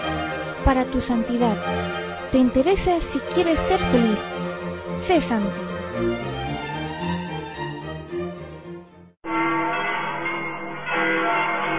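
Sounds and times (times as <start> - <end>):
church bells ringing in a dense sustained peal: 0.0 - 6.7, 9.2 - 11.7
speech: 0.6 - 6.4.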